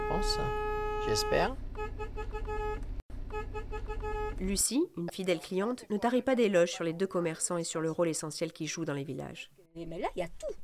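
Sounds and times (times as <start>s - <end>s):
delivery van horn honking in a village: 0.0s - 4.6s
speech: 0.2s - 1.6s, 4.4s - 10.6s.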